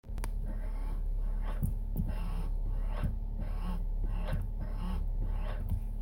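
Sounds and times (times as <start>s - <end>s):
brake pedal friction: 0.1s - 6.0s.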